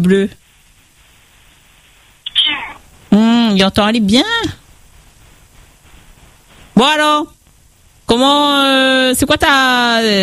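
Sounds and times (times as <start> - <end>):
speech: 0.0 - 0.4, 3.5 - 4.6, 6.8 - 7.4, 8.1 - 10.2
cat meowing: 2.3 - 2.9.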